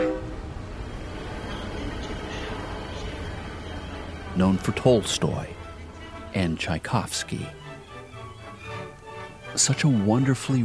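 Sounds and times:
train horn blast: 0.0s - 0.5s
train rumbling past: 0.0s - 10.6s
speech: 4.4s - 5.6s, 6.3s - 7.6s, 9.6s - 10.6s.

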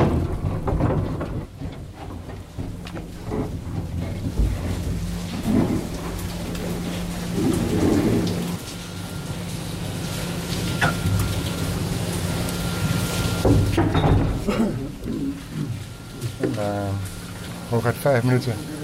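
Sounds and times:
rattling and clattering of a mine elevator: 0.0s - 8.6s
mine elevator descending underground: 0.0s - 18.6s
steady mechanical hum of a mine elevator: 0.0s - 18.8s
speech: 17.8s - 18.7s.

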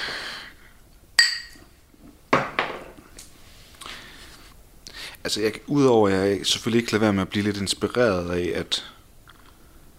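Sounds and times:
glasses clinking in a toast: 1.2s - 1.7s
speech: 5.2s - 9.0s.

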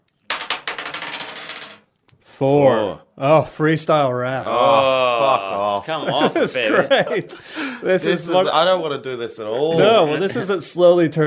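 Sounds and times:
dice rolling on a hard surface: 0.2s - 2.0s
speech: 2.4s - 11.2s
laughter: 4.4s - 8.7s, 9.4s - 10.8s.

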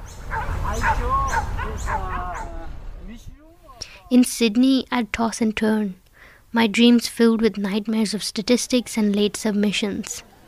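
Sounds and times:
dogs barking at night in Mumbai heard through a window: 0.0s - 2.9s
low rumble: 0.0s - 8.8s
speech: 1.8s - 3.4s, 4.1s - 10.3s.

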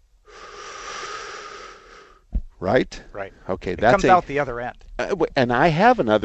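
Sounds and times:
person inhaling imitating an engine sucking in air and fuel: 0.2s - 2.3s
soft low thump: 2.3s - 2.6s
speech: 2.6s - 6.2s.

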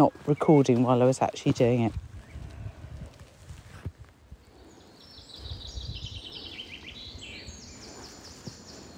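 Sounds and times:
speech: 0.0s - 2.1s
birds singing outdoors: 0.0s - 2.7s, 4.3s - 8.9s.

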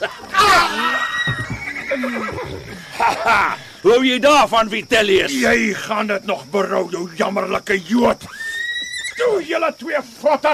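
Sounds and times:
speech: 0.0s - 0.7s, 3.3s - 8.4s, 9.2s - 10.5s
laughter: 0.0s - 3.8s, 10.2s - 10.5s
horse whinnying after being prodded: 0.4s - 3.7s, 8.2s - 9.2s.

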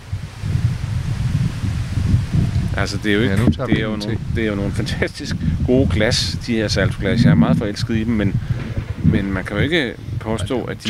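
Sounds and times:
wind blowing outdoors: 0.0s - 10.8s
speech: 2.8s - 10.8s.

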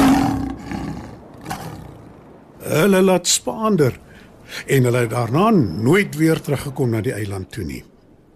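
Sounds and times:
lion roaring loudly: 0.0s - 2.3s
speech: 2.7s - 7.9s.

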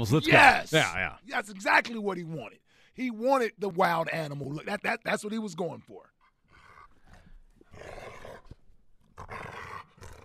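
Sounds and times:
speech: 0.0s - 6.2s
growling roar: 7.7s - 8.5s, 9.2s - 10.2s.

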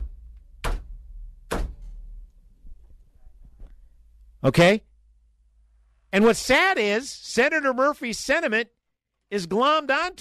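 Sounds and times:
head banging on a desk: 1.5s - 1.9s
speech: 4.4s - 4.9s, 6.1s - 10.1s.

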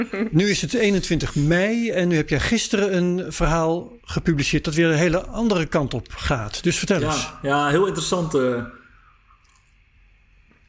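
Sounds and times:
speech: 0.0s - 8.8s
person sipping water: 9.3s - 9.8s
wet mouth clicks: 9.3s - 9.8s.

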